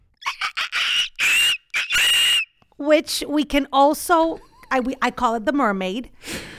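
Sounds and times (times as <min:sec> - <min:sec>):
person imitating a dolphin with squeaky chirps and whistles: 0:00.2 - 0:02.5
speech: 0:02.8 - 0:06.4.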